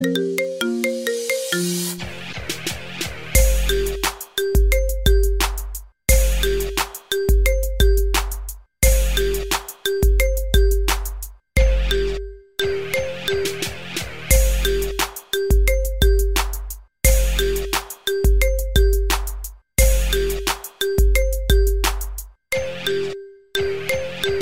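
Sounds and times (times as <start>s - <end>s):
marimba ringtone: 0.0s - 2.0s, 3.4s - 5.5s, 6.1s - 8.2s, 8.8s - 11.0s, 11.6s - 16.5s, 17.1s - 19.2s, 19.8s - 24.4s.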